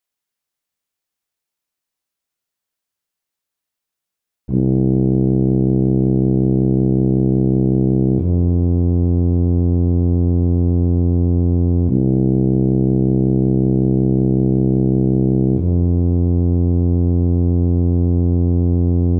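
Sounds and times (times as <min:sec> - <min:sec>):
tuba in E-flat: 0:04.5 - 0:19.1.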